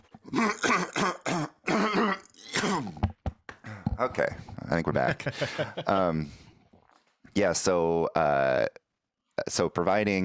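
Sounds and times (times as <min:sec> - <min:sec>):
speech: 0:00.3 - 0:01.5, 0:04.0 - 0:06.4, 0:07.4 - 0:08.8, 0:09.4 - 0:10.2
person clearing throat: 0:00.3 - 0:03.1
laughter: 0:04.8 - 0:06.3.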